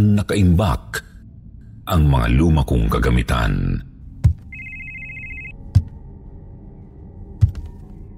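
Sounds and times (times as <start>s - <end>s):
speech: 0.0s - 1.1s, 1.9s - 3.9s
cellphone ringtone electronic trill: 4.5s - 5.6s.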